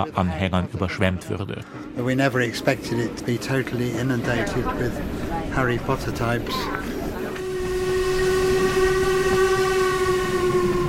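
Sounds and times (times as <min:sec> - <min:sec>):
speech: 0:00.0 - 0:06.9
steam train rumbling across a viaduct: 0:01.8 - 0:10.8
steam locomotive whistle on a viaduct in a right-hand curve: 0:07.3 - 0:10.8.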